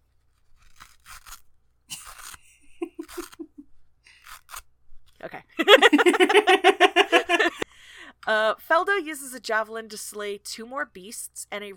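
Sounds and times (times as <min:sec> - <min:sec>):
Velcro on a brace strap ripping open and pressed shut during adjustment: 0:00.2 - 0:03.5, 0:04.2 - 0:05.2
laughter: 0:02.8 - 0:03.6, 0:05.6 - 0:07.6
speech: 0:08.3 - 0:11.7.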